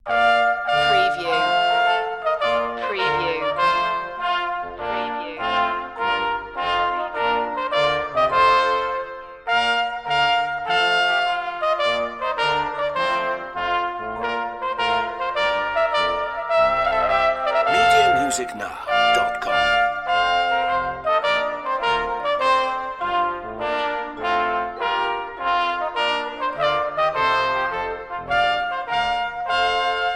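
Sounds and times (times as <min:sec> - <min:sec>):
trumpet playing: 0:00.1 - 0:17.0, 0:17.6 - 0:30.1.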